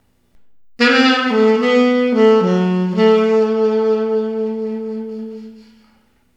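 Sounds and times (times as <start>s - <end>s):
saxophone with effects: 0.8s - 5.9s.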